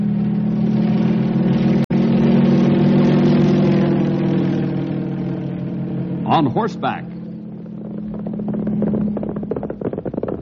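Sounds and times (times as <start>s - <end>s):
airplane engine droning: 0.0s - 10.4s
speech: 6.4s - 7.1s.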